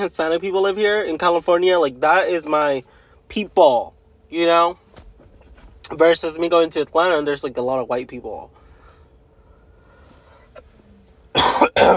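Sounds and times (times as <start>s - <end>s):
speech: 0.0s - 4.8s, 5.9s - 8.6s
person coughing with throat clearing: 11.3s - 11.9s.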